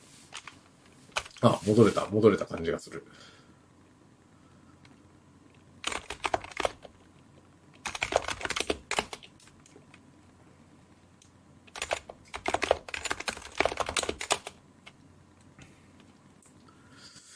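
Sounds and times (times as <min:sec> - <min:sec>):
fast typing on a computer keyboard: 0:01.2 - 0:01.4, 0:05.8 - 0:07.0, 0:07.8 - 0:09.6, 0:11.7 - 0:15.0
speech: 0:01.4 - 0:03.4.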